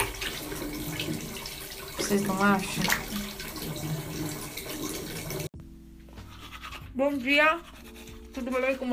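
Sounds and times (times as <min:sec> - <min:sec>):
tap water running into sink: 0:00.0 - 0:05.5
speech: 0:02.1 - 0:03.1, 0:07.0 - 0:07.7, 0:08.4 - 0:08.9
person brushing teeth in Canada: 0:06.2 - 0:08.9.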